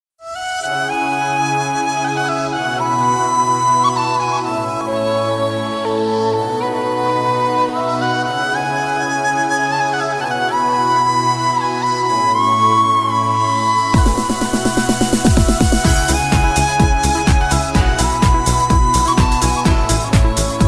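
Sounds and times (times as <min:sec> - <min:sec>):
flute: 0:00.2 - 0:20.6.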